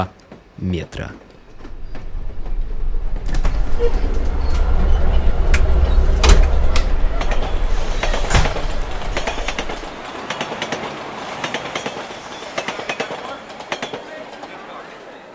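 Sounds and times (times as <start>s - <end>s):
speech: 0.0s - 1.3s, 3.8s - 4.6s
metro train rumbling into station and braking: 1.4s - 15.3s
metro train sliding doors clattering open: 1.5s - 11.9s.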